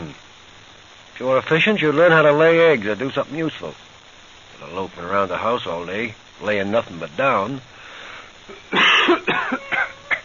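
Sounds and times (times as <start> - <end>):
speech: 1.2 - 3.9, 4.6 - 7.7
person coughing harshly: 8.5 - 10.2.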